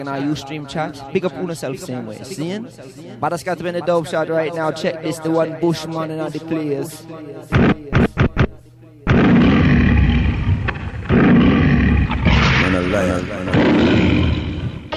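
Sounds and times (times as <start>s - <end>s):
speech: 0.0s - 8.1s
lion roaring: 9.1s - 14.9s.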